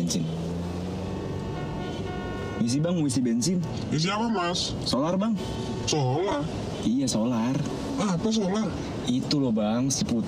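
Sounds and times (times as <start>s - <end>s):
dense road traffic engine rumble in a traffic jam: 0.0s - 10.2s
speech: 0.1s - 0.4s, 2.6s - 10.2s
car horns honking: 1.2s - 3.2s, 5.3s - 6.9s.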